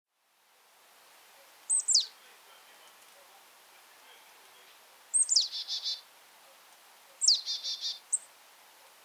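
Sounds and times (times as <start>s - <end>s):
marsh tit Poecile palustris calling: 1.7s - 3.0s, 4.1s - 6.1s, 7.2s - 8.3s.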